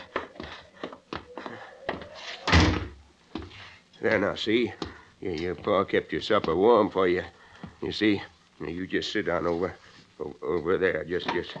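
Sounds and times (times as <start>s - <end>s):
footsteps going up wooden steps to a house: 0.0s - 2.5s, 3.3s - 3.7s, 4.7s - 6.9s, 7.5s - 7.8s
door opening and shutting: 2.3s - 3.0s
speech: 4.0s - 11.5s.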